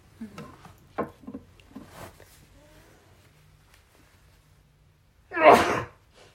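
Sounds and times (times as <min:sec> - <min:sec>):
rustling: 0:00.1 - 0:04.8
loud sneeze: 0:05.3 - 0:06.1.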